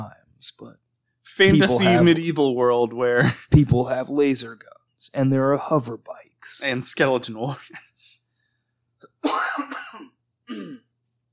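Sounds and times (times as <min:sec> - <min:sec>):
speech: 0:00.0 - 0:00.8, 0:01.4 - 0:08.2, 0:10.5 - 0:10.8
person coughing: 0:09.0 - 0:10.9
throat clearing: 0:09.0 - 0:10.9.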